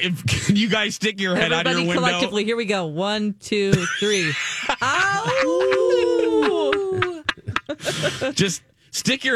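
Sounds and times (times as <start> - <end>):
speech: 0.0 - 6.6, 7.7 - 9.3
laughter: 1.4 - 2.3, 3.7 - 8.6
people howling like dogs: 5.0 - 7.3.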